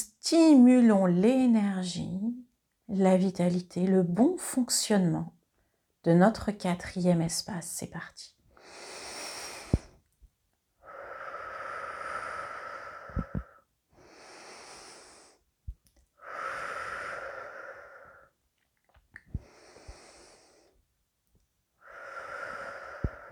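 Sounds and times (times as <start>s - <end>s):
speech: 0.0s - 5.4s, 6.0s - 8.4s
deep slow breaths with soft wheezing rasp during a guided breathing exercise: 8.6s - 10.1s, 10.8s - 15.5s, 16.2s - 18.4s, 19.2s - 20.8s, 21.8s - 23.3s.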